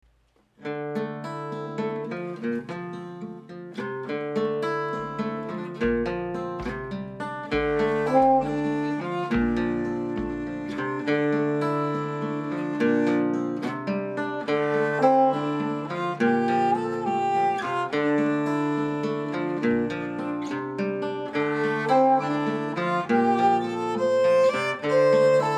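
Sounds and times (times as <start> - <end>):
guitar playing an Eastern theme: 0.6 - 25.5
violin playing an Eastern theme: 7.4 - 13.7, 14.4 - 20.4, 21.2 - 25.5.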